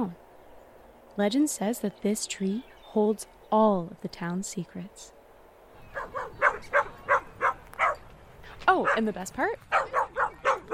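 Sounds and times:
speech: 0.0 - 0.2, 1.2 - 5.2, 8.7 - 10.0
dog barking: 5.9 - 8.0, 9.7 - 10.7
dog whining: 5.9 - 8.0.

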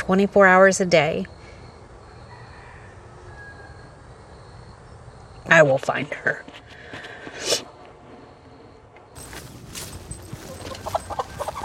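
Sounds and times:
outdoor noise: 0.0 - 11.6
speech: 0.1 - 1.4, 5.6 - 6.6
chickens clucking: 9.2 - 11.6.

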